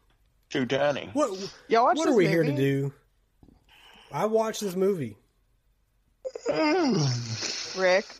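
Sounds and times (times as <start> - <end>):
speech: 0.5 - 3.0, 4.1 - 5.2, 6.3 - 8.1
laughter: 2.0 - 2.8
person yawning: 6.3 - 7.7.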